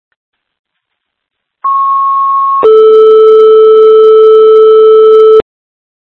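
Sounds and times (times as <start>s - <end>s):
two-tone emergency dispatch alert tones: 1.6s - 5.4s.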